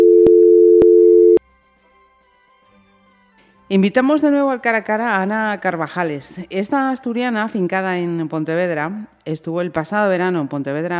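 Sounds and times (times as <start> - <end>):
telephone busy tone after call hang-up: 0.0 - 1.4
speech: 3.7 - 10.9.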